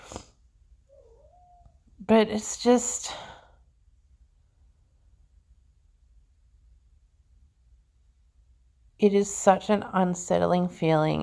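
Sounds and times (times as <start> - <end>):
cat in heat meowing: 0.9 - 1.9
speech: 2.1 - 3.3, 9.0 - 11.2.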